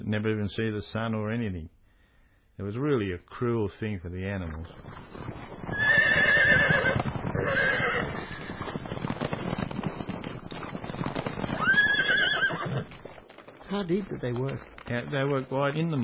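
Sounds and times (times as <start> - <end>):
speech: 0.1 - 1.8, 2.6 - 6.8, 13.7 - 16.0
horse hooves clip-clopping and clattering: 4.2 - 16.0
horses neighing: 4.7 - 15.8.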